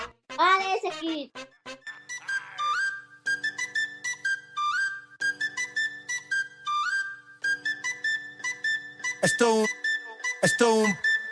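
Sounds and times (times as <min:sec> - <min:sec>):
upbeat instrumental song intro with whistle-like lead melody and punchy beats: 0:00.0 - 0:11.3
speech: 0:00.4 - 0:01.4, 0:09.2 - 0:09.8, 0:10.4 - 0:11.3.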